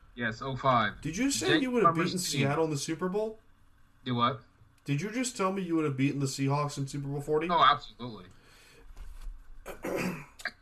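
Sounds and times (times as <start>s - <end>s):
speech: 0.2s - 3.4s, 4.0s - 8.4s
raspy throat clearing: 9.7s - 10.5s.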